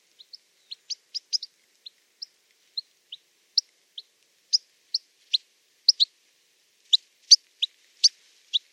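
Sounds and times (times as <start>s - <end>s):
bird chip calls: 0.2s - 6.1s.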